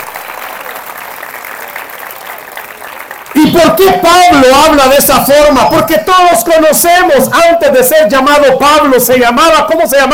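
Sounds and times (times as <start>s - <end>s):
audience applause: 0.0s - 4.0s
speech: 3.6s - 10.1s.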